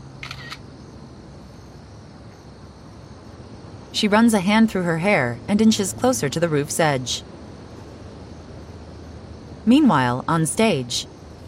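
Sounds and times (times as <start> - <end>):
steady low outdoor hum: 0.0 - 11.4
cell phone camera shutter click: 0.2 - 0.6
speech: 4.0 - 7.3, 9.7 - 11.1.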